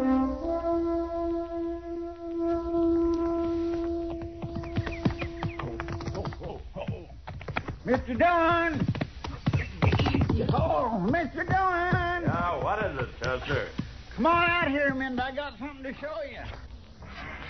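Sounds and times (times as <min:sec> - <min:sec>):
horse hooves clopping in quick uneven rhythm: 0:00.3 - 0:17.4.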